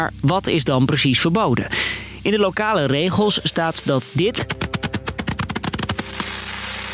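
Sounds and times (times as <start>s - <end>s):
lingering hiss: 0.0s - 4.6s, 6.0s - 6.9s
speech: 0.0s - 4.7s
fireworks exploding in sharp cracking bangs: 4.6s - 6.9s.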